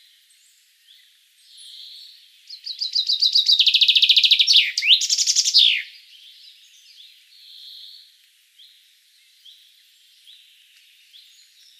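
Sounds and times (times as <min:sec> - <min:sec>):
common chaffinch singing, Fringilla coelebs: 0:01.6 - 0:07.0.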